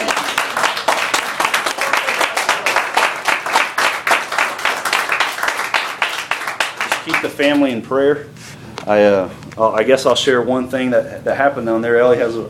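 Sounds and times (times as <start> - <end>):
congregation clapping hands: 0.0 - 7.7
speech: 7.3 - 12.4.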